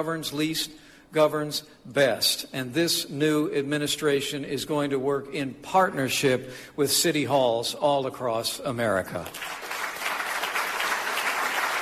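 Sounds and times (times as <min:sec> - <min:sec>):
speech: 0:00.0 - 0:09.8
tepid applause from an audience of mayors: 0:09.4 - 0:11.8.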